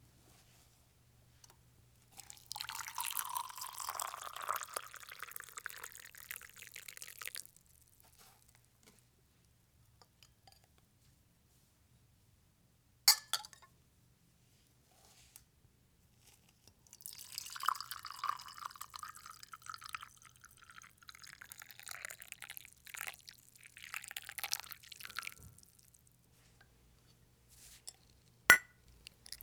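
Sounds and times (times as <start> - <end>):
hot water poured into a porcelain mug: 2.2 - 7.8, 16.9 - 26.0
sharp ceramic clinks of a porcelain mug: 13.1 - 13.7, 28.5 - 29.4.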